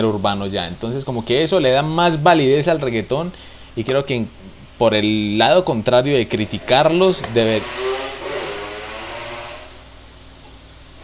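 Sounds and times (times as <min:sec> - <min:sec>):
speech: 0:00.0 - 0:07.9
loud steady mechanical whir with a hissing buzzing motor tone: 0:06.3 - 0:09.8.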